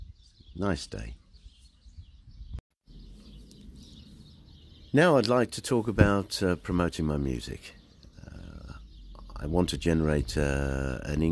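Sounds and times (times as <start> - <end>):
birdsong from birds in the trees: 0.0 - 11.2
speech: 0.6 - 1.2, 4.9 - 7.8, 9.4 - 11.2.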